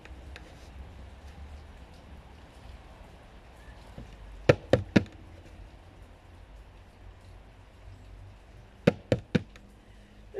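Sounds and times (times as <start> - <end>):
knocking on the wooden door of a house: 4.5 - 5.1, 8.9 - 9.5.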